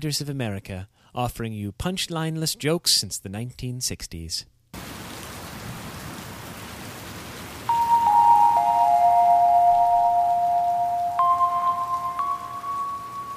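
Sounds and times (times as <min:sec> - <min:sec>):
speech: 0:00.0 - 0:04.9
steady rain: 0:04.8 - 0:13.3
long sustained musical tones: 0:07.7 - 0:13.3.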